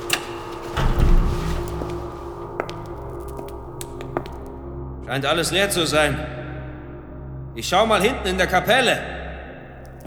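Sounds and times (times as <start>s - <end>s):
heavy door pushed open with a rumble and thump: 0.0s - 4.4s
speech: 5.1s - 6.4s, 7.6s - 9.1s.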